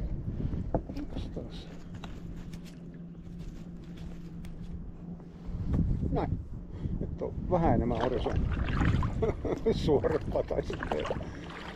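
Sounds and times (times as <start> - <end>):
wind noise: 0.0 - 1.2, 5.4 - 11.7
motorboat engine droning across the water: 0.0 - 11.7
speech: 1.2 - 1.9, 6.2 - 6.5, 7.2 - 11.4
faint splashing of water: 7.9 - 9.3, 10.0 - 11.7.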